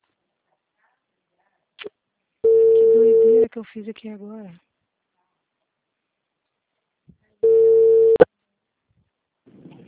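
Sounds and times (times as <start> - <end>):
telephone busy tone after a dropped call: 2.5 - 3.5, 7.4 - 8.3
speech: 3.6 - 4.7.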